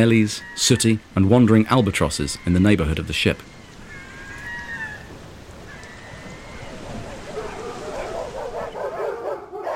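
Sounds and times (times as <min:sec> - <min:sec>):
speech: 0:00.0 - 0:03.6
pack of sled dogs barking on an expedition ship: 0:07.3 - 0:09.7.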